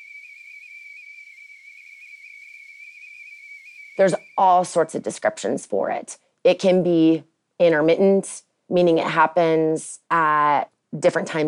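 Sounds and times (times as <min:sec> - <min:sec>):
tea kettle whistling: 0:00.0 - 0:04.7
speech: 0:04.0 - 0:11.4.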